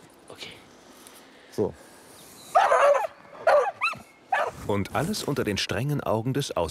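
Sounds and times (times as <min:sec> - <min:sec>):
speech: 0:01.6 - 0:01.9, 0:04.7 - 0:06.6
dog barking and yelping outdoors during dog training: 0:02.5 - 0:04.6.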